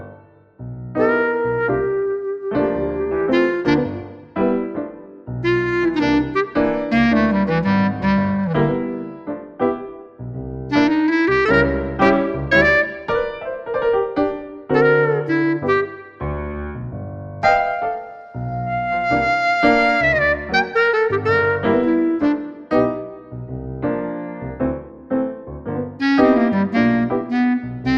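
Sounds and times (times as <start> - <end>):
blues music: 0.9 - 27.9.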